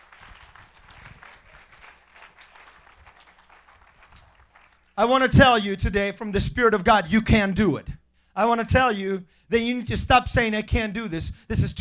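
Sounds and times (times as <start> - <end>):
large group clapping: 0.0 - 5.2
speech: 5.0 - 11.8.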